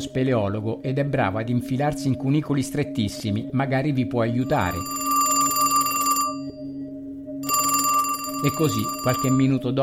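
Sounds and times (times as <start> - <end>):
speech: 0.0 - 5.1, 8.4 - 9.8
telephone ringing: 4.4 - 6.8, 7.4 - 9.7.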